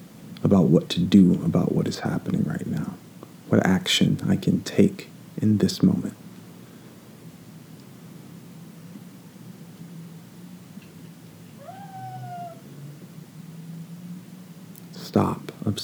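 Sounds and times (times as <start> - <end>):
steady hiss: 0.0 - 15.8
speech: 0.4 - 6.2
male house cat meowing: 11.5 - 12.7.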